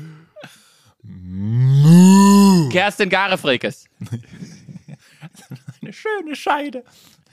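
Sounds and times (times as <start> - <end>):
cow mooing: 1.4 - 2.8
speech: 2.8 - 4.3, 6.0 - 7.2
laughter: 4.0 - 6.6.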